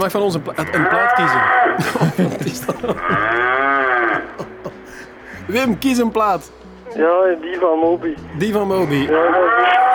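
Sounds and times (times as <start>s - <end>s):
speech: 0.0s - 3.7s, 5.5s - 9.9s
cow mooing over a mobile phone line: 0.6s - 1.8s, 3.0s - 4.4s, 9.1s - 9.9s
laughter: 1.2s - 3.4s, 4.1s - 5.4s.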